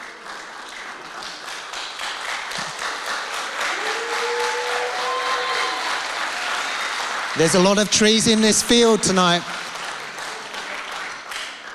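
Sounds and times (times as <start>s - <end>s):
crowd clapping: 0.0s - 11.7s
people whooping: 3.6s - 6.9s
speech: 7.4s - 9.6s.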